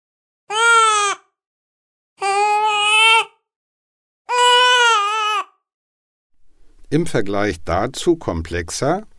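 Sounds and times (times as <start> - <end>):
newborn baby crying on third day of life: 0.5 - 1.3, 2.2 - 3.4, 4.3 - 5.6
speech: 6.9 - 9.1.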